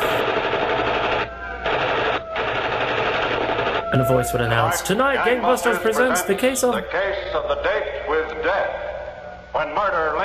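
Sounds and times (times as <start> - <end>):
loud rapid machine gun fire: 0.0 - 3.9
speech: 3.9 - 8.8, 9.6 - 10.2.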